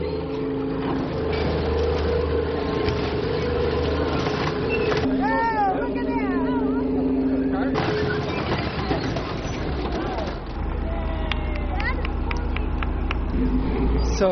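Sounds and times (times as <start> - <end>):
car metal scraping under a tank: 0.0 - 10.8
tank engine rumbling while crushing a car: 0.0 - 14.3
tank tracks clanking: 0.8 - 5.6, 7.6 - 10.8
people talking: 5.1 - 8.0, 8.6 - 12.8, 14.0 - 14.3.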